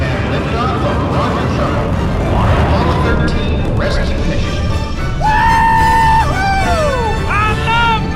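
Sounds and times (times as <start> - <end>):
continuous roar of a space shuttle launch: 0.2 - 7.3
person on board screaming during shuttle launch: 5.2 - 8.0.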